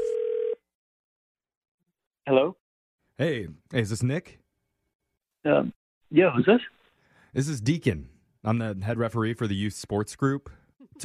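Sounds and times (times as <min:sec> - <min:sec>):
telephone dial tone: 0:00.0 - 0:00.6
speech: 0:02.3 - 0:02.6, 0:03.2 - 0:04.4, 0:05.4 - 0:11.0.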